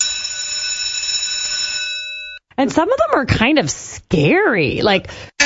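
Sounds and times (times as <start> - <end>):
electric school recess bell ringing: 0.0 - 2.4
speech: 2.6 - 5.3.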